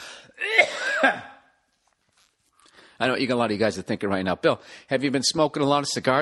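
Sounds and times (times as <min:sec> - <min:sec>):
harsh raspy coughs from dust: 0:00.4 - 0:01.5
speech: 0:01.0 - 0:01.3, 0:03.0 - 0:06.1.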